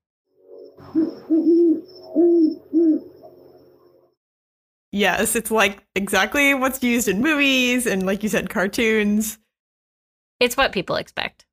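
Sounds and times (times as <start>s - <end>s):
great horned owl giving deep resonant hoots: 0.8s - 3.8s
speech: 5.0s - 9.4s, 10.4s - 11.5s.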